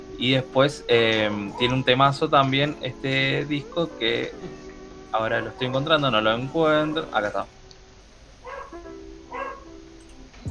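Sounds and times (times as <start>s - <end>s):
speech: 0.2s - 7.6s
dog barking: 8.4s - 9.7s.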